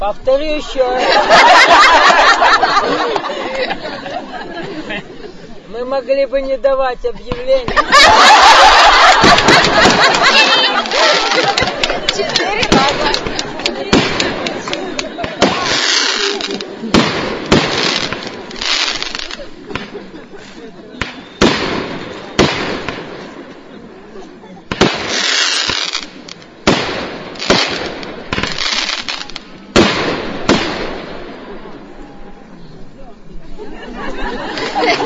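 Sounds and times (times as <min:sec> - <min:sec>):
speech: 0:00.0 - 0:03.2, 0:05.8 - 0:13.1
laughter: 0:00.8 - 0:05.7, 0:07.6 - 0:17.0, 0:17.8 - 0:21.0, 0:33.3 - 0:35.0
fireworks exploding: 0:07.6 - 0:23.6, 0:24.7 - 0:31.7.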